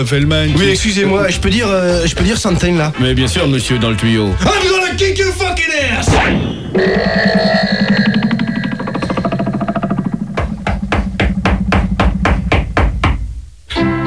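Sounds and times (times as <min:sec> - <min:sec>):
speech: 0:00.0 - 0:08.0
buzzing distorted tonal music: 0:00.0 - 0:14.0
loud rapid knocks on a door: 0:09.1 - 0:13.3.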